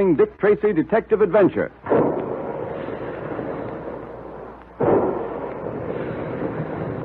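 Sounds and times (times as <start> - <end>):
speech: 0.0 - 1.8
big guns firing: 1.8 - 7.0
sharp loud blast: 1.8 - 7.0.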